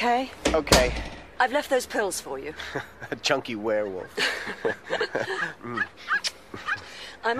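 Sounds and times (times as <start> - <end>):
speech: 0.0 - 7.3
laughter: 2.6 - 6.9
dog barking and whimpering: 5.8 - 6.9.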